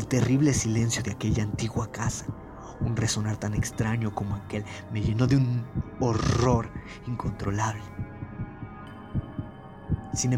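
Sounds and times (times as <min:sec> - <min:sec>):
low thumping heartbeat: 0:00.1 - 0:03.8, 0:05.0 - 0:07.4, 0:08.0 - 0:10.3
speech: 0:00.1 - 0:08.2, 0:10.1 - 0:10.3.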